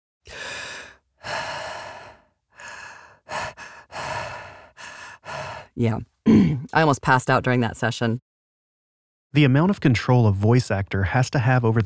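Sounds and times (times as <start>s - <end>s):
heavy ragged mouth breathing: 0.3s - 6.7s
sharp gasps: 0.3s - 6.7s
speech: 5.8s - 8.3s, 9.3s - 11.8s.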